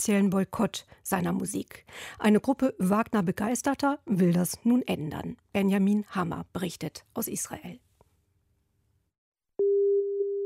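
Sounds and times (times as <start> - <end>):
speech: 0.0 - 7.8
telephone ringing tone of an outgoing call: 9.6 - 10.4.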